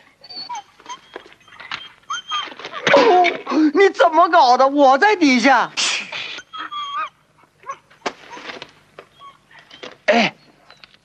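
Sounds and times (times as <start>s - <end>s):
dog whining and whimpering while held back by a person: 0.0s - 3.5s, 6.3s - 10.8s
speech: 4.1s - 5.8s.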